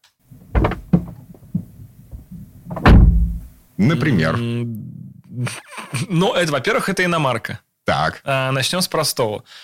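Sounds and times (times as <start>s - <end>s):
car door being handled with clicks and thuds: 0.4s - 3.5s
speech: 3.8s - 9.6s.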